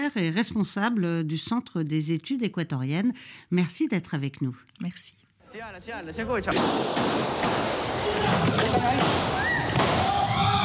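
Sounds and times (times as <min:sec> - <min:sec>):
speech: 0:00.1 - 0:10.0
sharp bangs during armed men storming a live television studio set: 0:06.5 - 0:10.3
raised voices shouting: 0:08.0 - 0:10.6.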